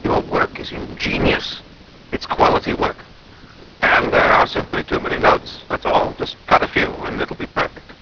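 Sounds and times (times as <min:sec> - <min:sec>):
LPC noise: 0:00.0 - 0:08.0.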